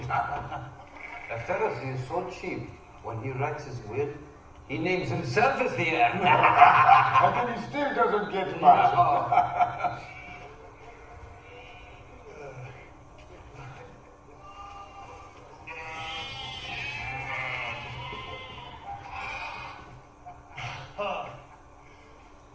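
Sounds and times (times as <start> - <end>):
laughter: 0.0 - 1.7, 6.1 - 11.2
speech: 0.1 - 10.2
sheep bleating: 0.8 - 1.9, 11.3 - 12.8, 13.8 - 21.4.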